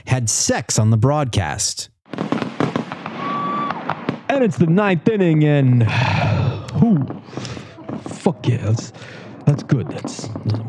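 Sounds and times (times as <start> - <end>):
speech: 0.2 - 1.9, 4.4 - 6.2, 6.8 - 7.5, 8.2 - 10.6
fireworks cracks and bangs: 2.1 - 4.8, 6.7 - 10.6
faint crackling background: 6.6 - 10.6.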